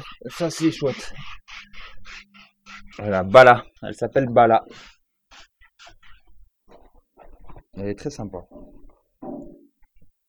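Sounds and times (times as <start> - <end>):
sow grunting while being scratched with a horse curry comb: 0.0 - 7.6
speech: 0.2 - 1.6, 3.0 - 4.9, 7.8 - 8.8.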